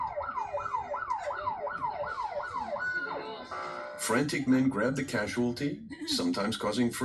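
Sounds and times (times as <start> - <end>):
ambulance siren wailing: 0.0 - 4.7
speech: 4.1 - 7.0.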